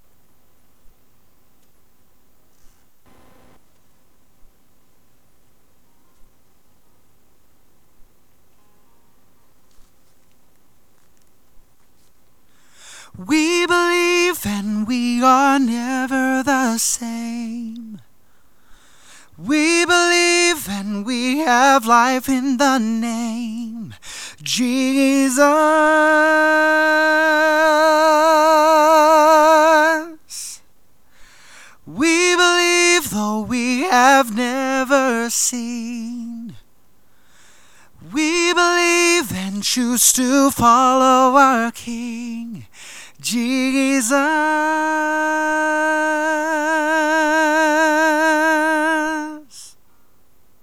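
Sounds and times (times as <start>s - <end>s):
lead vocals: 12.6s - 49.9s.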